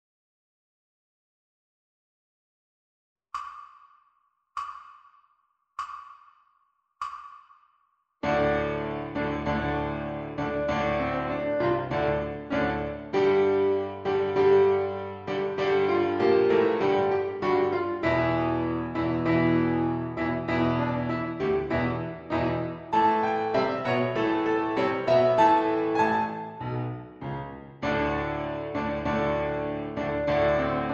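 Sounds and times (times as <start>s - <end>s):
dominant seventh gallop piano backing track: 8.2s - 30.9s.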